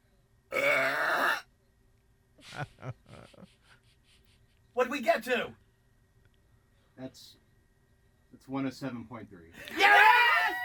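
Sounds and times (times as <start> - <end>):
long loud resonant burp from a woman: 0.5 - 1.4
speech: 4.8 - 5.6, 7.0 - 7.4, 8.5 - 10.2.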